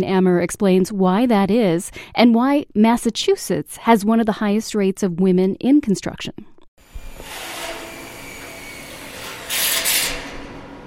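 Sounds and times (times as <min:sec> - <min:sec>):
speech: 0:00.0 - 0:06.5
drill grinding into metal beams: 0:06.8 - 0:10.8.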